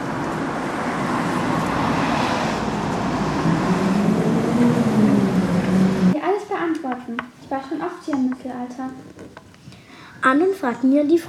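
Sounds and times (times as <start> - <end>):
bus driving with road and engine noise: 0.0 - 9.1
speech: 10.2 - 11.2.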